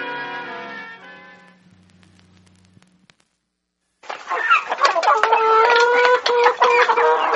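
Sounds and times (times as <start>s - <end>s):
low hum: 1.0s - 4.0s
chickens clucking and squawking: 4.3s - 7.3s.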